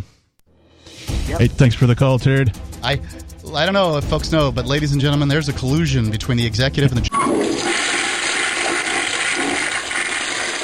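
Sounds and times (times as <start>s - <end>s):
speech: 1.3s - 7.7s
toilet flush sound effect played from a button: 7.1s - 10.6s.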